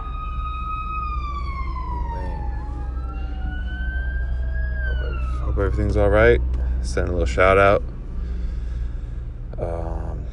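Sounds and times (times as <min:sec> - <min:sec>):
fire truck siren wailing: 0:00.0 - 0:09.6
road traffic rumble: 0:00.0 - 0:10.3
speech: 0:05.6 - 0:07.9.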